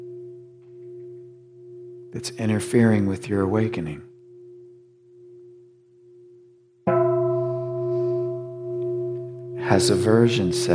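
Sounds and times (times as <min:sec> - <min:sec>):
speech: 0:02.1 - 0:04.1, 0:09.7 - 0:10.7
bell being struck in a practice session: 0:06.9 - 0:10.7.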